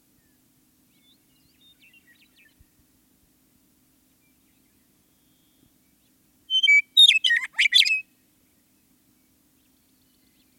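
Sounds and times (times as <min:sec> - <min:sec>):
Western meadowlark singing: 0:00.0 - 0:02.8, 0:04.0 - 0:10.5.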